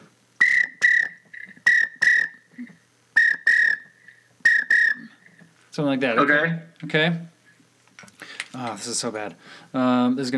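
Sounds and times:
widgeon duck call whistle: 0:00.0 - 0:05.5
speech: 0:05.8 - 0:07.3, 0:08.6 - 0:10.3.

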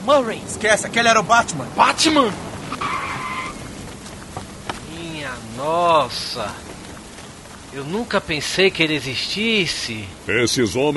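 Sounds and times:
speech: 0:00.0 - 0:02.5, 0:05.6 - 0:06.6, 0:07.7 - 0:10.9
car tires screeching while braking hard: 0:00.0 - 0:09.8
dull rumbling background: 0:00.0 - 0:10.9.

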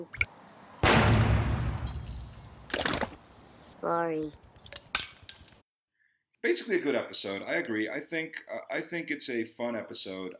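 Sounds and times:
speech: 0:00.0 - 0:00.3, 0:03.8 - 0:04.5, 0:06.4 - 0:10.3
loud explosion in a chemistry lab: 0:00.8 - 0:02.6
smaller crackling blast: 0:00.8 - 0:03.3.

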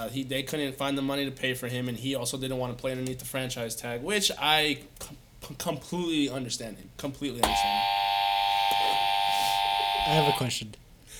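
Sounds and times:
speech: 0:00.0 - 0:08.0, 0:10.1 - 0:10.8
loud electronic buzzer: 0:07.5 - 0:10.5.

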